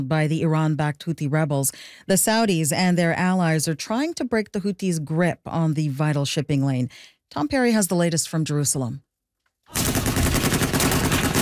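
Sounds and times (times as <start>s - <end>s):
speech: 0.0s - 9.1s
heavy machine guns mounted on pickup trucks firing in Yemen: 9.8s - 11.4s.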